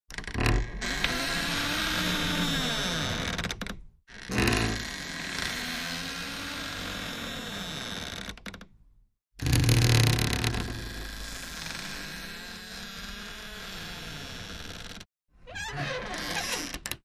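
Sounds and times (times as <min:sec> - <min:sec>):
wardrobe door creaking: 0:00.1 - 0:08.6, 0:09.4 - 0:17.0.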